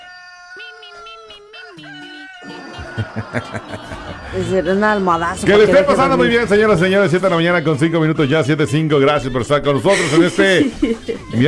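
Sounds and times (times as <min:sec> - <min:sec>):
rooster crowing: 0:00.0 - 0:07.6
speech: 0:01.8 - 0:02.0, 0:03.0 - 0:11.4
rooster clucking in rough bursts: 0:02.4 - 0:08.6
laughter: 0:02.4 - 0:08.7, 0:09.7 - 0:11.4.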